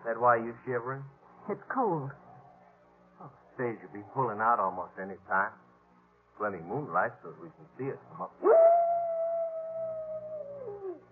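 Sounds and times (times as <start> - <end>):
speech: 0.1 - 2.2, 3.2 - 5.6, 6.4 - 8.8
coyote howling: 8.4 - 11.1.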